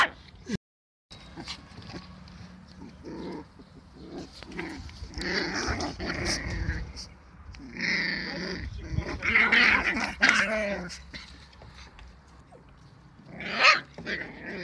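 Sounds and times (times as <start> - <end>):
dog growling: 2.8 - 11.0, 13.3 - 14.6.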